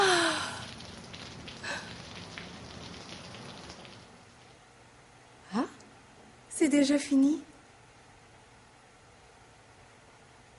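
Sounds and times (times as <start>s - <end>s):
rain pattering on a surface: 0.0s - 4.6s
speech: 6.6s - 7.5s.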